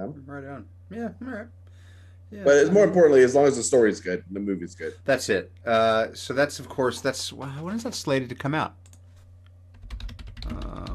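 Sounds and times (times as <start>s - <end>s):
speech: 0.0s - 1.6s, 2.3s - 8.8s
low steady hum: 0.0s - 10.9s
keyboard typing: 9.7s - 10.9s.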